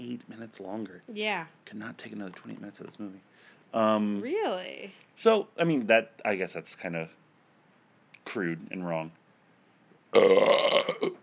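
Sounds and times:
speech: 0.2 - 7.2, 8.2 - 9.2, 10.1 - 11.2
loud drawn-out burp ending in throaty gurgles: 10.1 - 11.2.

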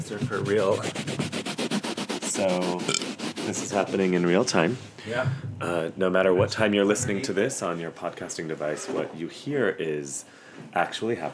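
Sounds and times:
speech: 0.0 - 1.2, 2.4 - 11.3
kitchen sponge scrubbing spilled coffee out of a rug: 0.0 - 5.0.

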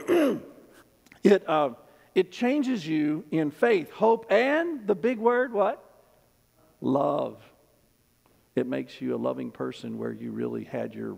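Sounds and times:
single short rough cough: 0.0 - 0.7
speech: 1.2 - 5.8, 6.8 - 7.5, 8.6 - 11.1.

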